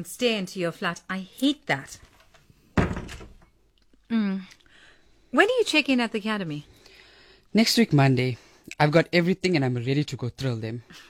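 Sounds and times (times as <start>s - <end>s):
speech: 0.0s - 2.1s, 5.3s - 6.7s, 7.5s - 11.0s
door swinging shut with a solid thunk and a brief rattle: 2.8s - 3.5s.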